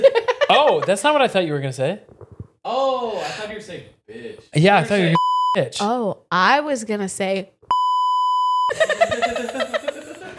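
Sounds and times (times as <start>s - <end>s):
laughter: 0.0s - 1.0s, 8.7s - 10.3s
speech: 0.5s - 7.6s, 8.7s - 9.7s
censor beep pure tone: 5.2s - 5.6s, 7.7s - 8.7s.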